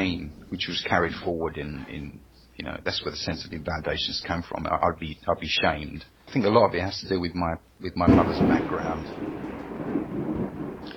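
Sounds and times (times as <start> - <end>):
thunder rumbling from a nearby storm: 0.0 - 4.8, 8.0 - 10.9
speech: 0.1 - 9.5.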